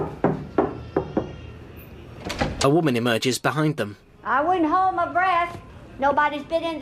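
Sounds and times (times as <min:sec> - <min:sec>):
knuckles knocking on an apartment door off a corridor: 0:00.0 - 0:01.3
speech: 0:02.6 - 0:06.7.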